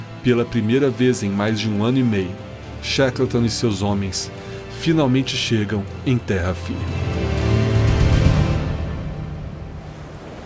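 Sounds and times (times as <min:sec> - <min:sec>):
rough churning sea at an isolated icy island: 0:00.0 - 0:10.4
speech: 0:00.2 - 0:07.3
very strong wind at an isolated icy island: 0:09.3 - 0:10.4.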